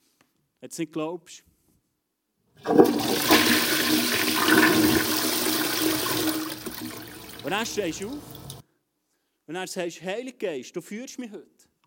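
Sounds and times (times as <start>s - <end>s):
speech: 0.6s - 1.5s, 2.6s - 3.3s, 7.4s - 8.3s, 9.5s - 11.6s
toilet flushing: 2.6s - 8.6s.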